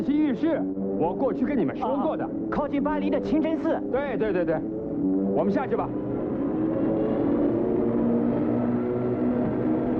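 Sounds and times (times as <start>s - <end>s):
airplane engines droning overhead: 0.0s - 9.9s
speech: 0.4s - 4.8s, 5.4s - 6.1s.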